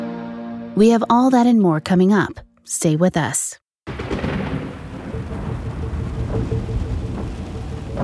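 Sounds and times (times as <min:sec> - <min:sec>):
speech: 0:00.8 - 0:03.6
low thunder rumbling: 0:03.9 - 0:08.0
steady rain hissing: 0:03.9 - 0:08.0.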